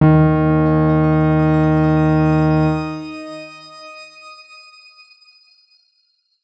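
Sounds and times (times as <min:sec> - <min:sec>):
D#2 note played mezzo forte: 0:00.0 - 0:03.2.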